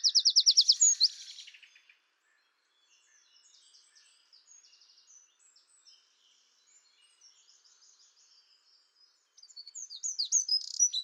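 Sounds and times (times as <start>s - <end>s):
Troglodytes troglodytes Eurasian wren singing: 0.0s - 1.7s, 9.4s - 11.0s.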